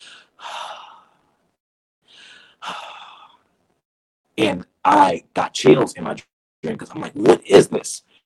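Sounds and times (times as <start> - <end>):
voice imitating an eerie inhale and exhale breathing: 0.0 - 1.2, 2.1 - 3.5
speech: 4.4 - 8.1.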